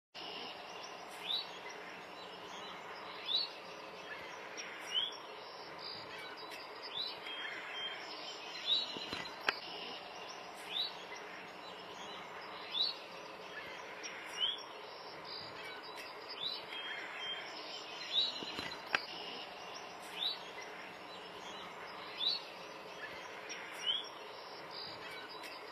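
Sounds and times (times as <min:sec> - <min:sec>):
multicoloured seedeater singing: 0:00.2 - 0:25.7.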